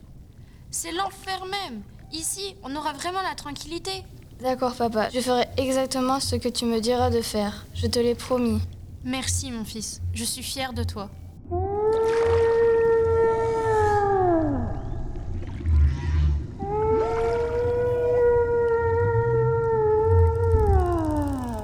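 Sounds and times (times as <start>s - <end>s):
speech: 0.7s - 11.6s
low rumbling underwater background: 1.2s - 21.6s
whale calls: 11.4s - 21.6s.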